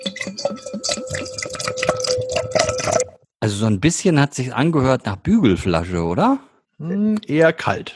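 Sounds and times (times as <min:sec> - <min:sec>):
beer pouring into a glass: 0:00.0 - 0:03.1
speech: 0:03.4 - 0:07.9.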